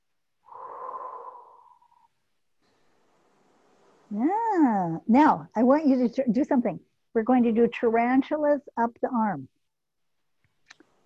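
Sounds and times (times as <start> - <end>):
slow deliberate breathing: 0.4 - 4.0
speech: 4.1 - 9.6.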